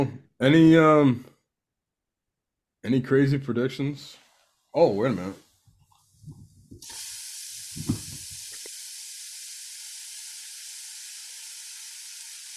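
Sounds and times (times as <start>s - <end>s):
speech: 0.0s - 1.3s, 2.8s - 5.4s, 7.8s - 8.0s
food sizzling: 4.2s - 12.5s.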